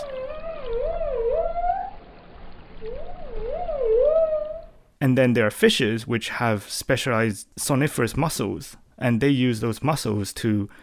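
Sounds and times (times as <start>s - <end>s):
long warbling dolphin whistles: 0.0s - 2.0s, 2.8s - 4.8s
speech: 5.0s - 10.8s.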